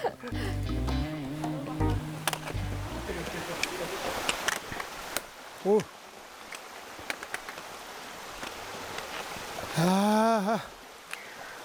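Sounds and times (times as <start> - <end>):
steady broadband rush of flowing stream water: 0.0 - 11.6
sharp clicks: 0.6 - 5.3
speech: 5.6 - 6.0, 9.8 - 10.8
short vocal exclamation from a person: 9.7 - 10.7.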